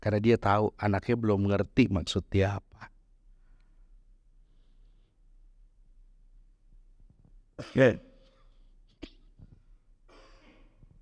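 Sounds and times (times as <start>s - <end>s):
speech: 0.0s - 2.9s, 7.6s - 8.1s
person coughing sharply: 7.6s - 8.2s, 8.9s - 9.4s, 10.1s - 10.7s.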